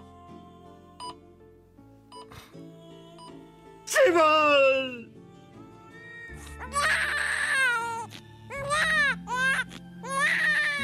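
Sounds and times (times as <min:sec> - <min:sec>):
speech: 0:03.9 - 0:05.0
newborn baby just delivered by surgery crying: 0:06.4 - 0:10.8.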